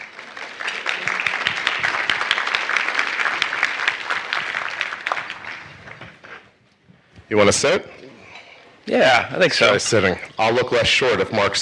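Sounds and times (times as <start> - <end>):
audience applause: 0.0 - 6.4
speech: 7.3 - 8.0, 8.8 - 11.6.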